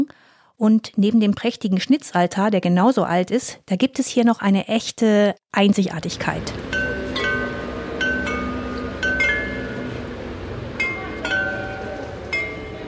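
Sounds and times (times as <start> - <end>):
speech: 0.0 - 6.8
Meissen porcelain carillon bells chiming: 6.6 - 12.8.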